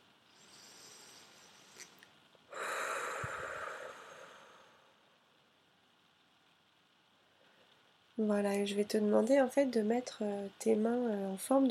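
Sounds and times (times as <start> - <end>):
faint hiss: 0.0 - 11.6
slow deep breathing during a relaxation exercise lying down: 0.3 - 5.1
speech: 8.2 - 11.6.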